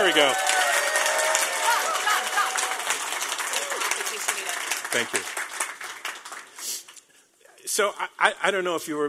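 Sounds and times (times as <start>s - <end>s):
audience applauding: 0.0s - 7.0s
speech: 0.2s - 0.5s, 4.9s - 5.4s, 7.8s - 9.0s.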